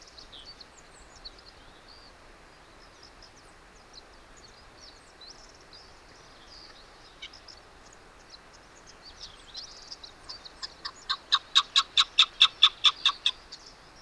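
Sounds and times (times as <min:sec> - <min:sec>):
chukar partridge calling clipped chuck notes: 0:10.3 - 0:13.6.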